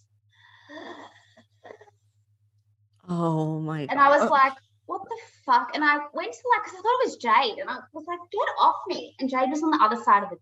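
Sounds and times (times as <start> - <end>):
faint steady hum: 0.0 - 10.4
person imitating heavy breathing: 3.1 - 3.9
speech: 3.1 - 4.6, 5.2 - 10.4.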